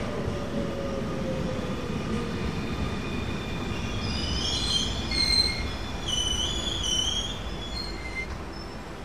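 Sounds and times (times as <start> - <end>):
commuter train rumbling through a station: 0.0 - 9.0
high metallic train wheel squeals: 4.4 - 8.8.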